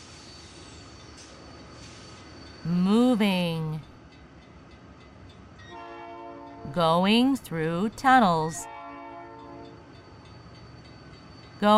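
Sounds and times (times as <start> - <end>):
freight train cars rolling on rails: 0.0 - 11.7
speech: 2.6 - 3.7, 6.8 - 8.7
freight train horn blaring: 5.7 - 6.7, 8.6 - 9.8.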